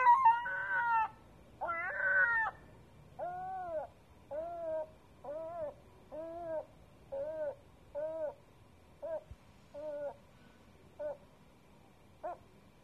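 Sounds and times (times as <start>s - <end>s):
seagull on a roof crying in wailing notes: 0.0s - 2.6s, 3.2s - 8.4s.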